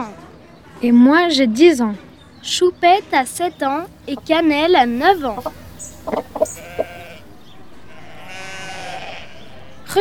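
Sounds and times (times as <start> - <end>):
speech: 0.8 - 6.6
goat bleating: 6.4 - 7.2, 7.9 - 9.4.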